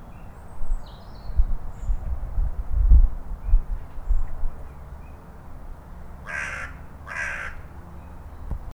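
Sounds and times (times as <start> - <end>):
low rumbling and thumping noise: 1.4 - 4.6
carrion crow Corvus corone giving rough caws: 6.2 - 7.8.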